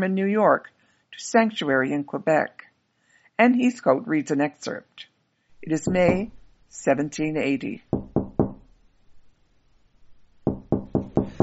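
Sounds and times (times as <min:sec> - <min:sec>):
speech: 0:00.0 - 0:02.6, 0:03.4 - 0:07.9
knocks on a wooden door: 0:05.8 - 0:06.3, 0:07.9 - 0:08.7, 0:10.4 - 0:11.4.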